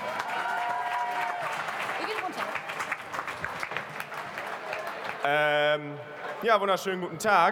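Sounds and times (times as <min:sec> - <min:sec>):
large crowd applauding at a rally: 0:00.0 - 0:05.8
crowd cheering at a rally: 0:00.0 - 0:06.5
speech: 0:05.2 - 0:07.5.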